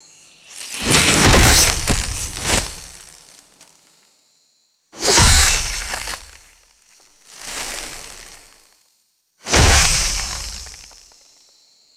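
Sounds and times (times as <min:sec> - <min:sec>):
heavy crunchy palm vegetation impacts: 0:00.4 - 0:03.8, 0:05.0 - 0:08.7, 0:09.4 - 0:11.2.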